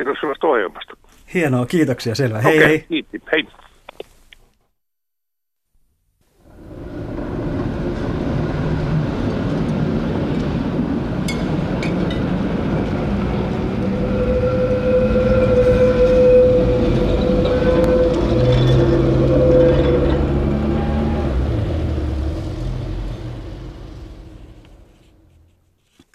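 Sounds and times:
speech: 0.0s - 3.6s
tram wheels rumbling and rattling on rails: 6.4s - 25.5s
thin metallic squeal of tram: 13.6s - 21.6s.

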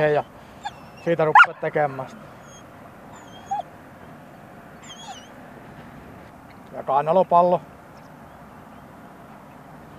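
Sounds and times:
speech: 0.0s - 0.4s, 1.0s - 2.4s, 6.8s - 7.7s
young German shepherd whimpering during border guard dog training: 0.1s - 1.5s, 2.4s - 3.7s, 4.8s - 5.3s.

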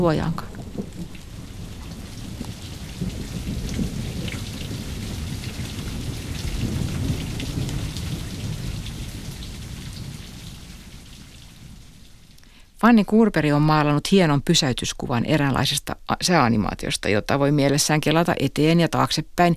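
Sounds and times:
speech: 0.0s - 0.5s, 12.8s - 19.5s
low rolling thunder from an approaching storm: 0.0s - 12.3s
steady rainfall: 0.0s - 12.8s.

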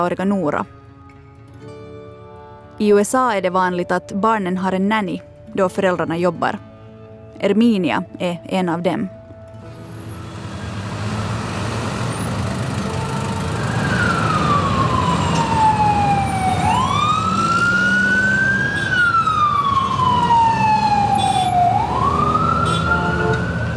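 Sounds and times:
speech: 0.0s - 0.8s, 2.8s - 6.7s, 7.4s - 9.2s
steady roar of city traffic on a busy street in New York: 8.8s - 23.7s
siren wailing up and down on a busy New York street: 12.9s - 23.7s.

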